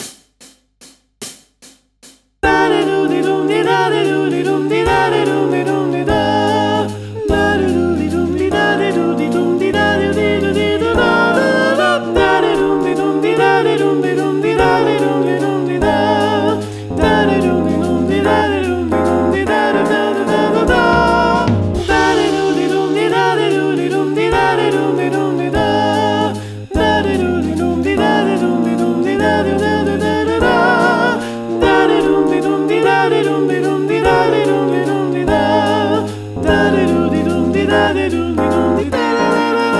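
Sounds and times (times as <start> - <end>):
singing voices: 2.4 - 39.7.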